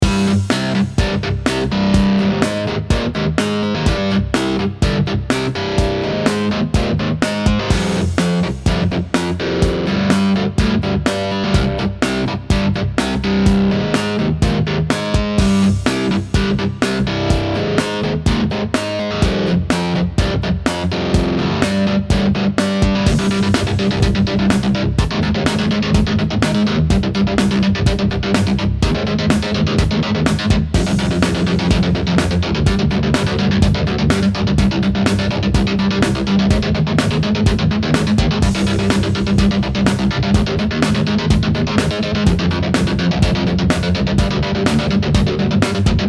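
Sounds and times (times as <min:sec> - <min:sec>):
guitar playing: 0:00.0 - 0:46.0.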